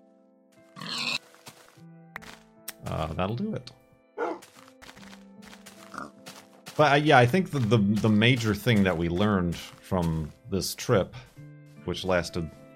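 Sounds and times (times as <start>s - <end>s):
pigs grunting and squealing oinks: 0.8s - 1.2s, 5.9s - 6.1s
speech: 2.8s - 3.8s, 6.8s - 11.3s, 11.9s - 12.6s.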